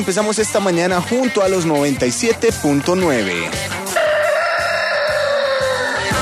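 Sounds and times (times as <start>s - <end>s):
speech: 0.0s - 3.8s
rooster crowing: 3.9s - 6.2s.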